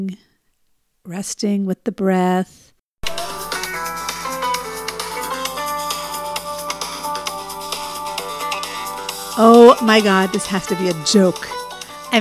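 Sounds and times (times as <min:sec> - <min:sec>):
speech: 0:00.0 - 0:00.3, 0:01.0 - 0:02.6, 0:09.4 - 0:12.1
phone ringing with a musical ringtone: 0:03.0 - 0:12.1.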